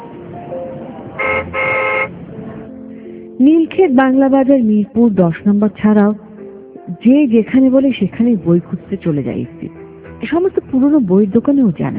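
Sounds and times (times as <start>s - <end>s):
car horn honking: 1.2s - 2.2s
speech: 3.4s - 6.3s, 6.9s - 11.9s.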